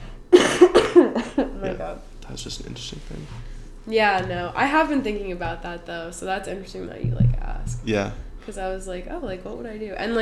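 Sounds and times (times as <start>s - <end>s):
rapid fit of harsh raspy coughs: 0.3s - 1.4s
speech: 1.8s - 10.2s.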